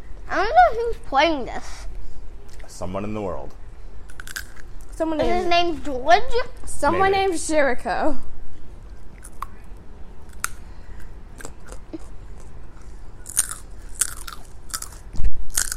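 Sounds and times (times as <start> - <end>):
speech: 0.4 - 1.9, 2.8 - 3.6, 5.0 - 8.3
crunching while chewing crisp food: 4.1 - 5.0, 9.0 - 9.6, 10.3 - 15.7.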